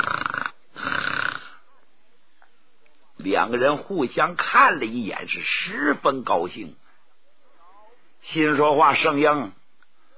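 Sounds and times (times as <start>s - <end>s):
voice imitating loud snoring: 0.0s - 1.6s
speech: 3.2s - 6.8s, 8.3s - 9.6s.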